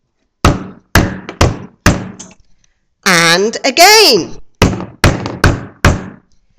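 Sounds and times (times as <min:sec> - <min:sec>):
man knocking on a house door: 0:00.4 - 0:02.2, 0:04.6 - 0:06.2
speech: 0:03.4 - 0:04.4.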